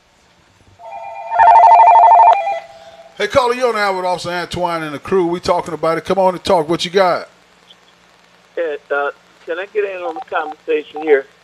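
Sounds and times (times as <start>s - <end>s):
telephone ringing with an incoming call to a call-in show: 0.8s - 3.0s
speech: 3.2s - 7.3s, 8.6s - 11.4s.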